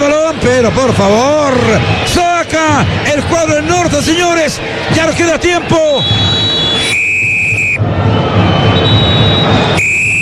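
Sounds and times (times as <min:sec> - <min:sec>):
stadium crowd roar: 0:00.0 - 0:10.2
speech: 0:00.4 - 0:06.4
referee's whistle blasts ending first half: 0:05.6 - 0:10.2.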